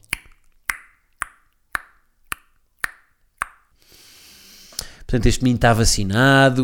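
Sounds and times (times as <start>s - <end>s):
mouth imitating a ping-pong ball bouncing: 0.0s - 3.7s
speech: 5.1s - 6.6s.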